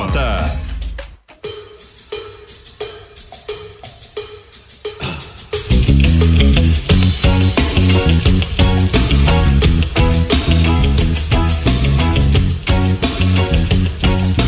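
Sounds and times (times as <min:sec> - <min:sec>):
rock song with full band: 0:05.0 - 0:14.4.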